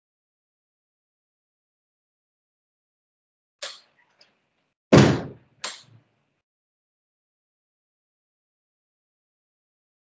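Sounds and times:
heavy door pulled shut with a rattle and thud: 4.9s - 5.4s.

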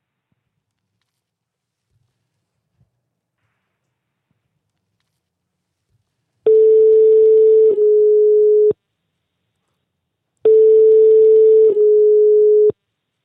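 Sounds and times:
telephone line tone while a call is placed: 6.5s - 8.8s, 10.5s - 12.8s.

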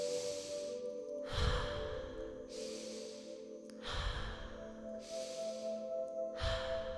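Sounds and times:
person breathing in through the nose and out through the mouth: 0.0s - 6.9s
steady low drone: 0.0s - 6.9s.

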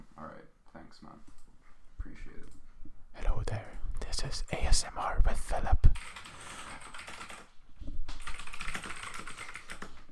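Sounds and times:
speech: 3.2s - 6.3s
typing on a computer keyboard: 6.0s - 7.5s, 8.2s - 10.1s.

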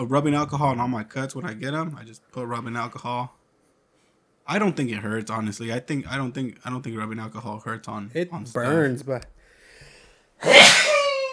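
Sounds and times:
speech: 0.0s - 3.4s, 4.5s - 9.3s
person sneezing: 10.4s - 11.3s.

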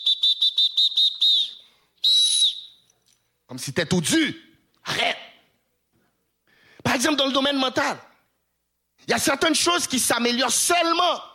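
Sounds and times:
referee blowing a whistle during a ball game: 0.0s - 2.9s
speech: 3.5s - 5.2s, 7.0s - 8.1s, 9.1s - 11.3s.

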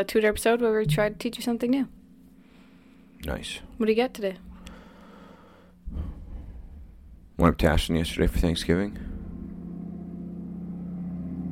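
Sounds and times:
speech: 0.0s - 2.0s, 3.2s - 4.5s, 7.4s - 9.1s
loud truck engine rumbling: 5.9s - 11.5s.

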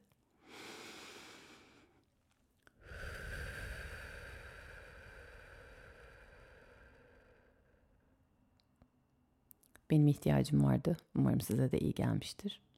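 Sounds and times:
deep breath in and out close to the microphone: 0.4s - 2.0s, 2.8s - 8.2s
speech: 9.9s - 12.7s.

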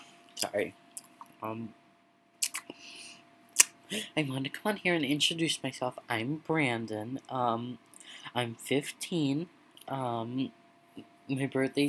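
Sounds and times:
speech: 0.4s - 0.8s, 1.4s - 1.8s, 3.9s - 11.8s
wet gum-chewing smacks: 2.4s - 2.7s
brief murmured vocal sound: 3.9s - 4.2s.

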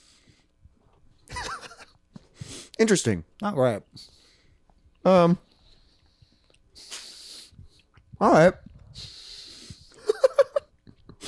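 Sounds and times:
speech: 2.8s - 4.1s, 5.0s - 5.5s, 8.2s - 9.1s
wet chewing of a chocolate cherry candy: 4.5s - 9.0s.

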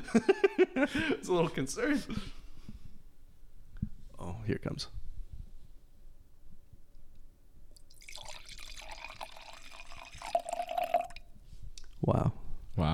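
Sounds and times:
speech: 0.1s - 2.4s, 4.5s - 5.0s, 12.0s - 12.9s
wine pouring into a glass: 7.8s - 11.3s.

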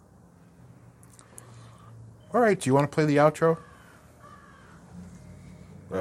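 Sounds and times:
low steady hum: 0.0s - 5.9s
speech: 2.3s - 3.7s
crow cawing: 3.4s - 5.6s.

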